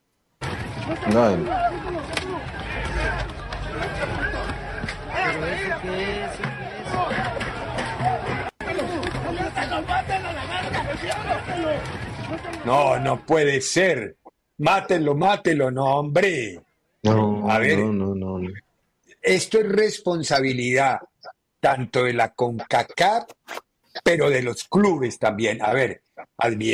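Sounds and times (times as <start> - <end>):
dense crowd of football fans murmuring and shouting before a match: 0.4 - 13.3
speech: 0.9 - 4.5, 5.3 - 7.4, 9.7 - 18.6, 19.2 - 26.7.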